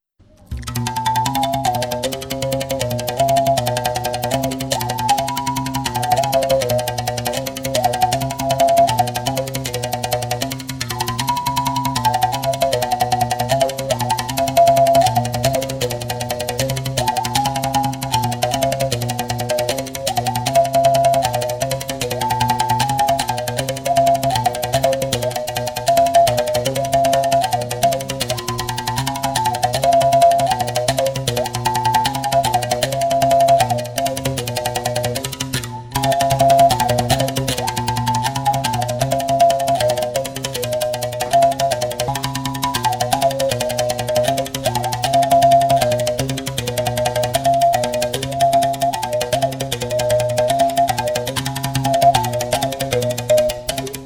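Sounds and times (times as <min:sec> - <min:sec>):
mouth bow: 0:00.3 - 0:54.0.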